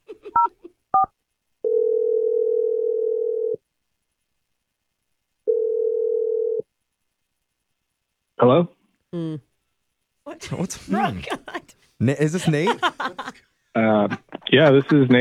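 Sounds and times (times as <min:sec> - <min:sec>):
telephone ringing tones while the call connects: 0:01.0 - 0:03.6, 0:05.5 - 0:06.6
speech: 0:08.4 - 0:09.5, 0:10.4 - 0:15.2
laughter: 0:10.9 - 0:15.2.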